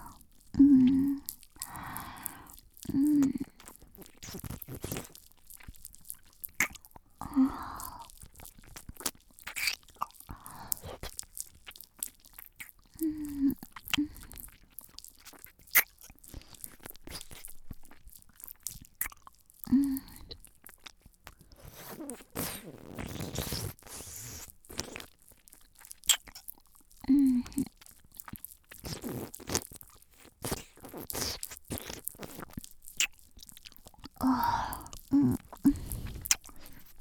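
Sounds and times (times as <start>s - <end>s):
wet mouth sounds biting and chewing a meat stick: 0.0s - 36.9s.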